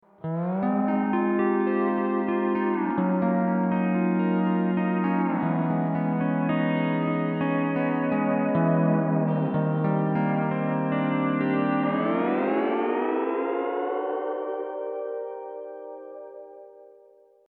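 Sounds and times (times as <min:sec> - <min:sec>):
steel guitar intro in C6th tuning with B on second string: 0:00.2 - 0:16.9.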